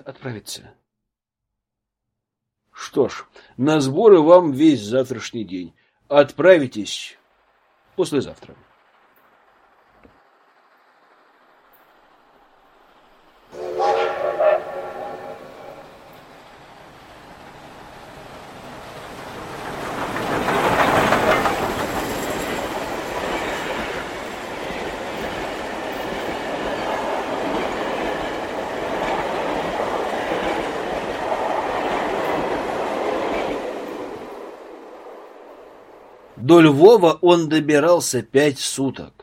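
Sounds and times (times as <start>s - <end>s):
speech: 0.0s - 0.8s, 2.8s - 7.2s, 8.0s - 8.7s, 36.5s - 39.2s
train rolling along the rails heard from a second-class carriage: 7.4s - 36.4s
train whistle: 13.5s - 16.2s.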